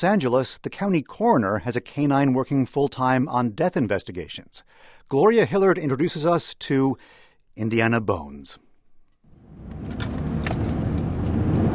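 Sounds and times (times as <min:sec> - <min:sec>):
speech: 0:00.0 - 0:08.6
coroner's car engine rumbling on winding roads in Los Angeles: 0:09.3 - 0:11.7.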